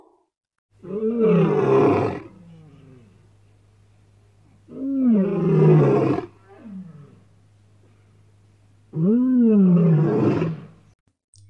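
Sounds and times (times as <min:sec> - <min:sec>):
lion roaring: 0:00.8 - 0:03.3, 0:04.6 - 0:07.3, 0:08.9 - 0:10.8
low steady hum: 0:02.2 - 0:05.6, 0:06.2 - 0:09.6.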